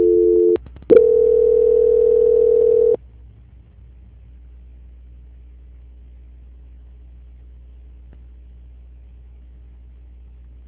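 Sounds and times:
telephone tone while a dropped call is transferred: 0:00.0 - 0:03.0.

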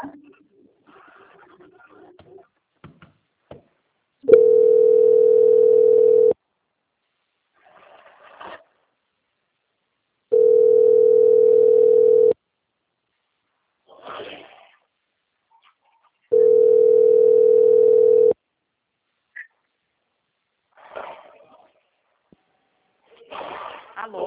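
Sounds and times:
telephone line tones during a call transfer: 0:04.3 - 0:06.4, 0:10.3 - 0:12.4, 0:16.3 - 0:18.4.

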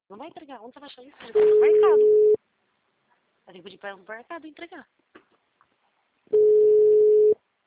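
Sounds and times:
speech: 0:00.1 - 0:02.4, 0:03.5 - 0:05.0
telephone ringback tone while a call is placed: 0:01.4 - 0:02.4, 0:06.4 - 0:07.4.

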